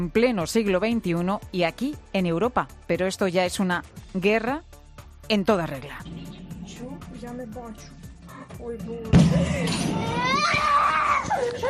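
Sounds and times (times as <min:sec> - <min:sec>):
speech: 0:00.0 - 0:11.6
loud bang of an explosion beside a house in Kyiv, Ukraine, during the war: 0:06.0 - 0:08.2, 0:09.1 - 0:10.0
small frightened child wailing and crying loudly: 0:09.8 - 0:11.6.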